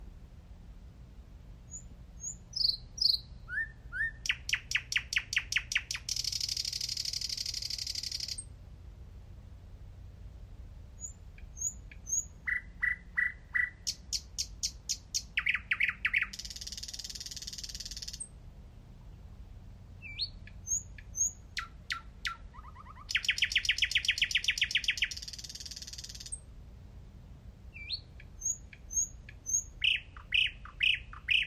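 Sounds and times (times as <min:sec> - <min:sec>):
thrush nightingale Luscinia luscinia singing: 0:01.6 - 0:08.6, 0:10.9 - 0:18.4, 0:20.0 - 0:26.6, 0:27.7 - 0:31.4.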